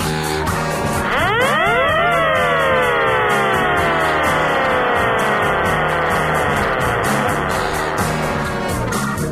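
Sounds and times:
siren wailing with rising and falling tone: 0.2 - 8.9
low rumbling engine-like drone: 0.4 - 9.2.

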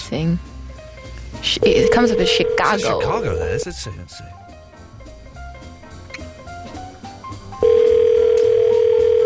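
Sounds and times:
speech: 0.1 - 0.5, 1.4 - 4.5
foreign-style telephone ringing tone: 1.6 - 3.6, 7.6 - 9.2.

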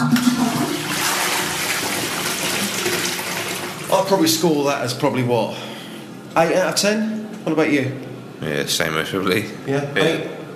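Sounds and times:
toilet flushing in a new public restroom cubicle: 0.0 - 4.7
speech: 4.0 - 5.7, 6.4 - 10.4.

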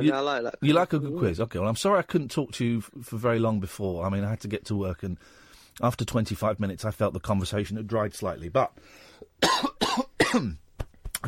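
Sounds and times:
speech: 0.0 - 9.7, 10.3 - 10.6
harsh loud coughing from crumbs caught in the throat: 9.4 - 10.6.

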